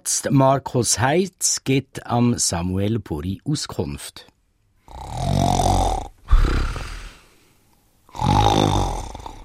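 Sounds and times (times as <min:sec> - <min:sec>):
speech: 0:00.0 - 0:04.3, 0:04.9 - 0:05.7
person snoring with rasping breaths: 0:04.9 - 0:07.4, 0:08.1 - 0:09.4.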